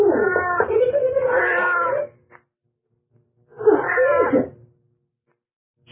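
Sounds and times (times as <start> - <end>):
cat meowing: 0.1 - 2.1, 3.6 - 4.5.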